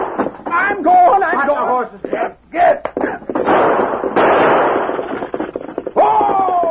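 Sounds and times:
gunshots frightening horses: 0:00.0 - 0:00.8, 0:02.8 - 0:06.6
noisy commotion: 0:00.0 - 0:06.6
slapping bangs frightening horses: 0:00.0 - 0:06.6
people shouting excitedly: 0:06.0 - 0:06.6.

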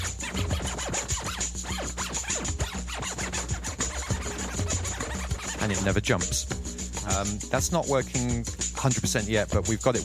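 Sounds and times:
sample digitally scratched with a computer mouse: 0:00.0 - 0:06.4
speech: 0:05.6 - 0:06.5, 0:07.1 - 0:10.0.

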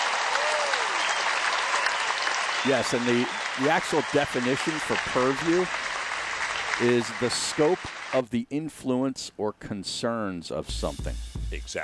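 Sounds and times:
dense applause from many hands: 0:00.0 - 0:08.2
speech: 0:02.6 - 0:05.9, 0:06.8 - 0:11.8.

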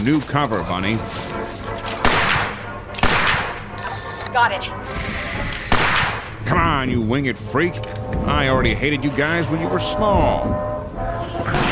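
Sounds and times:
speech: 0:00.0 - 0:01.6, 0:04.3 - 0:05.6, 0:06.4 - 0:10.7
gunshots: 0:02.0 - 0:03.7, 0:05.7 - 0:06.4, 0:11.5 - 0:11.7.

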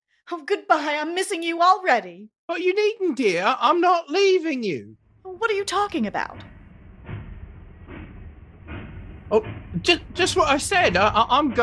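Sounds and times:
speech: 0:00.3 - 0:06.5, 0:09.3 - 0:11.6
train rumbling along rails: 0:05.3 - 0:11.6.

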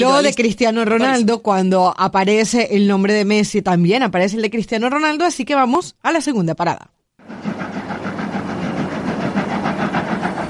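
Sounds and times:
speech: 0:00.0 - 0:07.0
train locomotive engine rumbling and chugging: 0:07.2 - 0:10.4.

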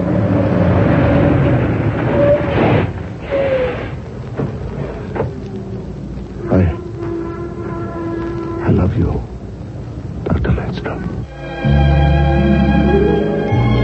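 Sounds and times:
truck crunching into a car: 0:00.0 - 0:08.6
truck engine rumbling: 0:00.0 - 0:13.8.

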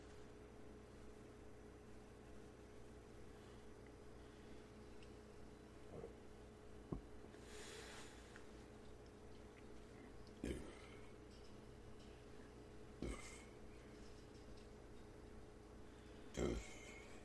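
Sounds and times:
quiet steady hum: 0:00.0 - 0:17.2
low burps after drinking beer: 0:10.4 - 0:11.1, 0:13.0 - 0:13.5, 0:16.4 - 0:17.1.

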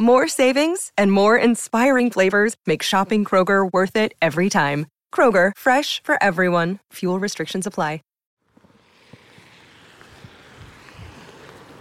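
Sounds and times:
speech: 0:00.0 - 0:08.1
wind blowing outdoors on a wet day: 0:08.5 - 0:11.7
wind buffeting the microphone: 0:09.0 - 0:11.7.

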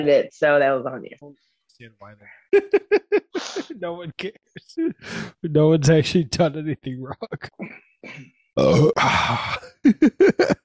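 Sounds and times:
speech: 0:00.0 - 0:10.6
laughter: 0:02.6 - 0:04.2, 0:04.8 - 0:07.5, 0:09.0 - 0:10.6
voice imitating a burp held back in the throat: 0:08.6 - 0:10.5.

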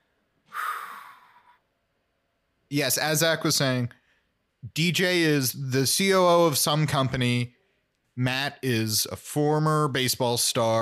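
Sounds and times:
deep breath drawn in: 0:00.5 - 0:01.6
speech: 0:02.7 - 0:04.0, 0:04.6 - 0:07.6, 0:08.2 - 0:10.8.

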